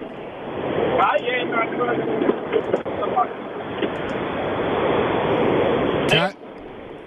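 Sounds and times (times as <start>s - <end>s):
road rumble and wind roar from a moving car over a phone line: 0.0s - 7.0s.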